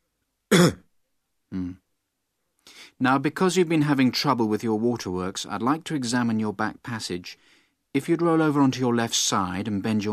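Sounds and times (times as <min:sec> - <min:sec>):
speech: 0:00.5 - 0:00.8, 0:03.0 - 0:10.1
patient coughing on request during a medical examination for a hernia: 0:00.5 - 0:00.9.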